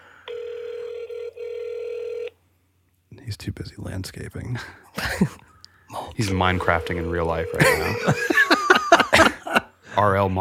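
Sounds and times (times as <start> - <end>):
outgoing phone call ringback tone: 0.3 - 2.3, 6.5 - 8.4
speech: 3.3 - 5.5, 6.2 - 8.4, 10.0 - 10.3
laughter: 7.5 - 9.7.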